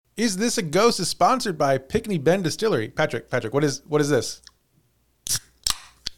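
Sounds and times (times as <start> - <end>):
speech: 0.2 - 4.5
drink can cracking open with fizzy hiss: 5.3 - 6.1.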